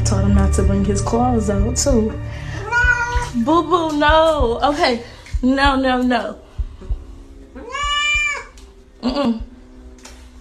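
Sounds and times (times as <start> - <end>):
soft low thumps: 0.0 - 9.8
speech: 0.1 - 2.5, 3.3 - 6.4, 9.0 - 9.5
cat meowing: 2.6 - 3.3, 7.6 - 8.6.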